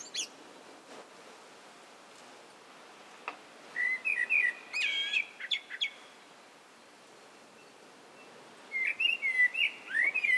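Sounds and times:
soft background hiss: 0.0 - 10.3
Eurasian blackbird (Turdus merula) song of clear whistled notes: 3.7 - 6.1, 7.6 - 10.3.

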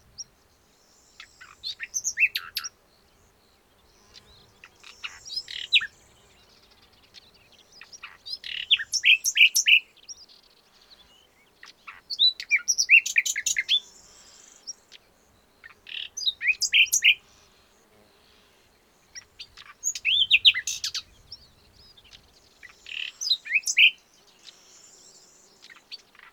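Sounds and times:
faint background hiss: 0.0 - 26.3
common nightingale Luscinia megarhynchos singing: 1.0 - 2.8, 4.2 - 10.3, 11.2 - 14.0, 14.6 - 17.2, 19.0 - 26.3.

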